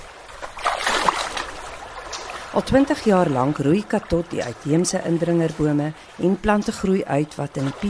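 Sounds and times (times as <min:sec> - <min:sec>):
river water rushing and gurgling in a nature reserve: 0:00.0 - 0:07.8
speech: 0:02.6 - 0:07.8.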